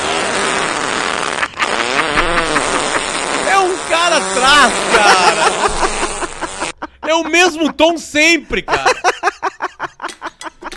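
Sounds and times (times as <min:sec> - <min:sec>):
fart: 0:00.0 - 0:06.8
laughter: 0:01.4 - 0:10.7
speech: 0:04.0 - 0:05.9, 0:07.1 - 0:09.2.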